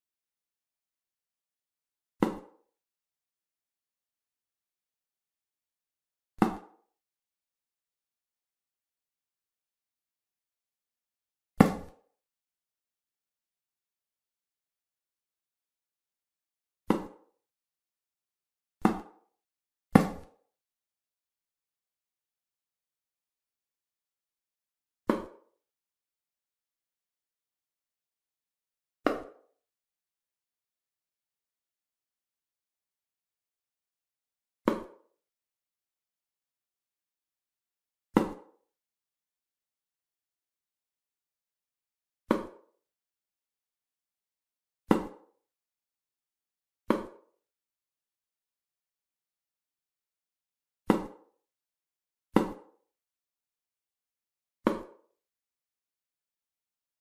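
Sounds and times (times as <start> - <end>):
darts hitting a board: 2.2 - 2.6, 6.4 - 6.8, 11.6 - 12.0, 16.9 - 17.3, 18.8 - 19.2, 20.0 - 20.4, 25.1 - 25.4, 29.1 - 29.4, 34.7 - 35.0, 38.2 - 38.5, 42.3 - 42.6, 44.9 - 45.3, 46.9 - 47.2, 50.9 - 51.2, 52.4 - 52.8, 54.6 - 55.0.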